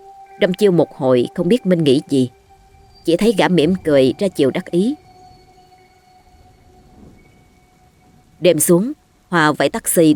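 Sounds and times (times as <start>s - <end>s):
faint low rumble: 0.0s - 10.1s
soft sustained hum: 0.0s - 10.1s
speech: 0.4s - 2.4s, 3.0s - 5.0s, 8.4s - 10.1s
heavy rain: 2.4s - 10.1s.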